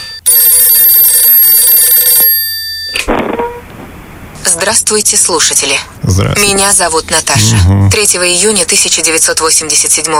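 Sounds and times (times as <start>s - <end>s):
telephone ringing with electronic tone: 0.0s - 3.1s
speech: 4.6s - 10.1s.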